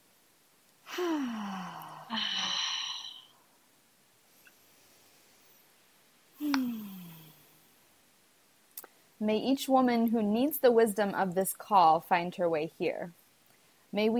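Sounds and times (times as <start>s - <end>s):
deep breaths in through the nose and out through the mouth: 0.8s - 3.6s, 6.4s - 7.6s
speech: 9.2s - 13.2s, 13.9s - 14.1s.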